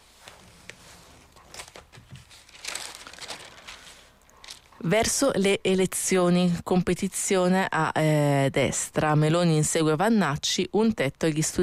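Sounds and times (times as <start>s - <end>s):
newspaper pages being turned: 0.0s - 4.8s
speech: 4.8s - 11.6s.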